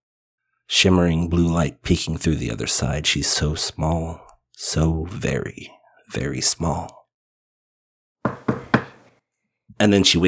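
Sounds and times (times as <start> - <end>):
speech: 0.7 - 7.0, 9.8 - 10.2
firm knocks on a wooden door: 8.3 - 9.1.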